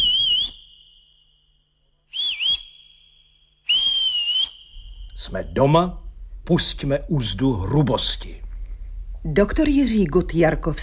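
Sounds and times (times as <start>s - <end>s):
person whistling: 0.0s - 1.4s, 2.1s - 5.2s
speech: 5.2s - 8.4s, 9.2s - 10.8s.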